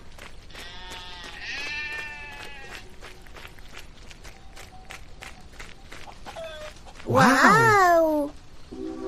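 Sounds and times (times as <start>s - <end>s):
sheep bleating: 0.6s - 2.8s
shuffling: 6.1s - 8.3s
speech: 7.1s - 8.4s.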